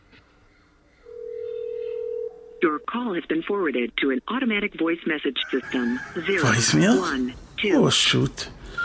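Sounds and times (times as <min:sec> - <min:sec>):
steady phone ringing tone: 0:01.1 - 0:02.6
speech: 0:02.7 - 0:08.8.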